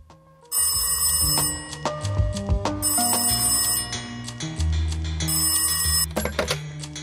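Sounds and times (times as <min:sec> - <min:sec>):
telephone bell ringing: 0:00.5 - 0:04.7, 0:05.3 - 0:06.6.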